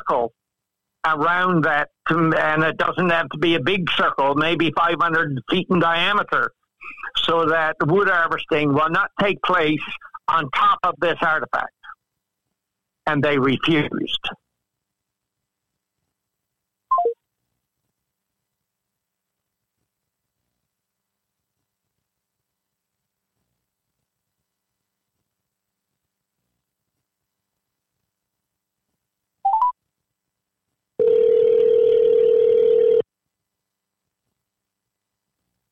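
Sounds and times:
speech: 0.1s - 0.4s, 1.0s - 11.8s, 13.0s - 14.4s
electronic telephone beep: 16.9s - 17.2s, 29.5s - 29.8s
steady loud telephone dial tone: 31.0s - 33.1s.

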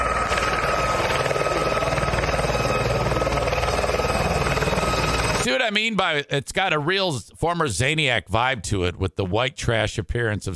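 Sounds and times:
helicopter rotor chop and engine drone while landing: 0.0s - 5.5s
speech: 5.5s - 10.5s.

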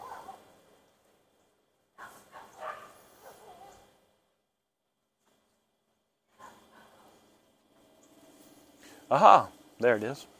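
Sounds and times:
dog barking at a person in its yard: 0.0s - 0.5s, 2.0s - 3.9s, 6.3s - 7.2s
speech: 9.1s - 10.3s.

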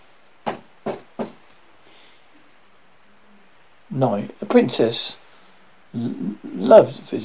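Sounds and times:
knocking on a wooden door: 0.4s - 1.4s
speech: 3.9s - 5.2s, 5.9s - 7.2s.

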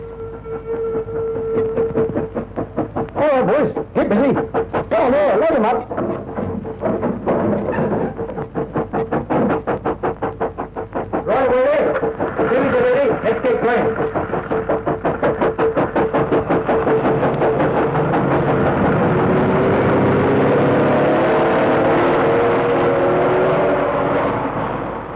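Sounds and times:
sustained whistle-like tone: 0.0s - 2.4s
lorry engines on a road beside an embankment: 0.0s - 25.1s
train rumbling on rails: 0.0s - 25.1s
speech: 3.4s - 6.3s.

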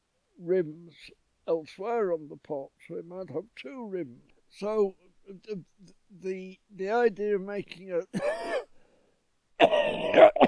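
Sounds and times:
speech: 0.4s - 8.6s
raspy cough with a throat-clearing quality: 8.2s - 8.8s, 9.6s - 10.4s.

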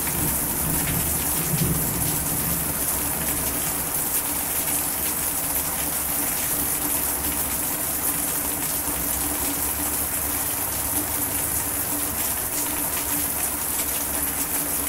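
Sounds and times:
steady rain: 0.0s - 14.8s.

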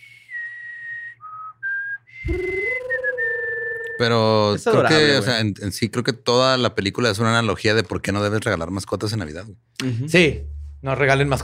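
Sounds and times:
short clear whistled melody: 0.0s - 4.1s
speech: 2.3s - 2.6s, 4.0s - 11.4s.

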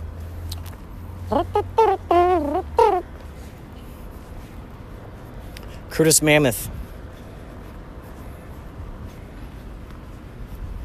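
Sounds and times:
speech: 1.3s - 2.7s, 6.0s - 6.8s
man's voice imitating an elephant trumpeting: 1.3s - 3.1s.

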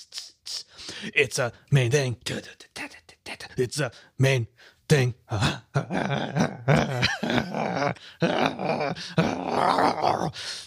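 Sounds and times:
speech: 1.0s - 3.0s, 3.6s - 10.6s
person imitating a dog growling and yipping as if wrestling with a toy: 5.4s - 10.4s.

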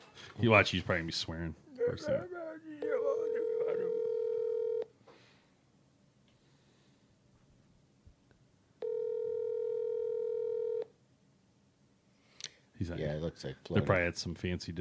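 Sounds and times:
speech: 0.4s - 2.4s, 12.8s - 14.7s
outgoing Skype call ringback tone: 2.8s - 4.9s, 8.8s - 10.9s.

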